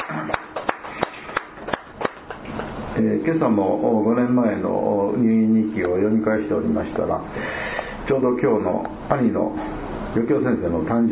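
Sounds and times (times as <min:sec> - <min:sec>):
applause at a birthday celebration during a church gathering: 0:00.0 - 0:02.7
speech: 0:03.0 - 0:07.5, 0:08.1 - 0:11.1.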